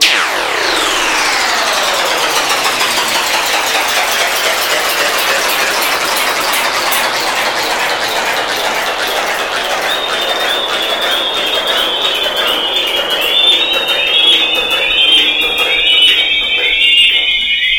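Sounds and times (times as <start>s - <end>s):
jaw harp: 0.0s - 17.6s.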